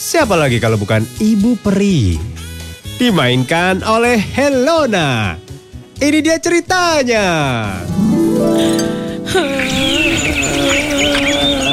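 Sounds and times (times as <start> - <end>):
speech: 0.2 - 2.4, 3.0 - 5.4, 6.0 - 11.7
sustained tonal background: 7.9 - 11.7
birds chirping and twittering: 8.3 - 11.7
laughter: 8.6 - 11.7.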